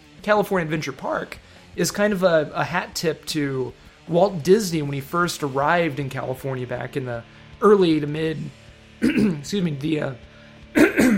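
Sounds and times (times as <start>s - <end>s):
speech: 0.2s - 11.1s
man clearing his throat: 9.0s - 9.5s, 10.7s - 11.1s.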